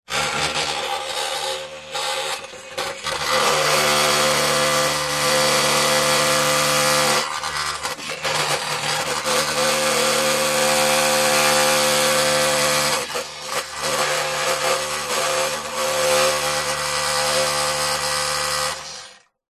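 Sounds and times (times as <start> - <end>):
industrial power tool vibrating and grinding metal: 0.0 - 19.4.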